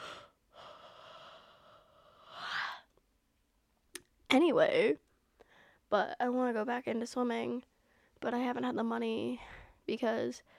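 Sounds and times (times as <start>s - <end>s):
drawn-out yawn: 0.0s - 2.9s
speech: 4.4s - 5.1s, 5.9s - 10.5s.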